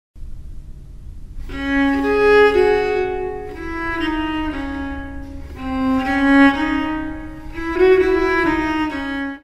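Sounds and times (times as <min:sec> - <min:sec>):
contrapuntal music: 0:01.4 - 0:09.4.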